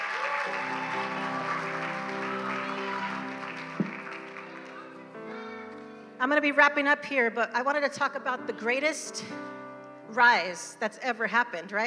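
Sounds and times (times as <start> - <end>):
audience applause: 0.0 - 5.6
speech: 6.2 - 11.8.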